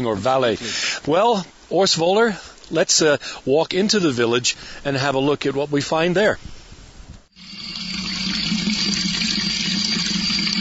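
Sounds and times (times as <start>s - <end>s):
speech: 0.0s - 6.6s
water flowing near a fountain in a historic mountain village: 7.4s - 10.5s.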